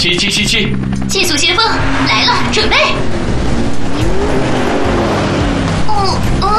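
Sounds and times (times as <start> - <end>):
speech: 0.0 - 3.4
tire and road noise: 0.0 - 6.5
red sports car engine howl: 0.9 - 6.5.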